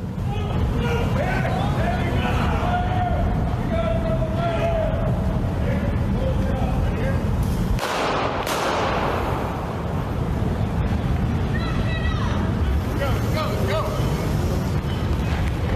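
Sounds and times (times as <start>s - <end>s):
people's voices: 0.0s - 7.4s, 9.9s - 15.7s
gunshots as a man is shot on a street: 7.8s - 9.8s.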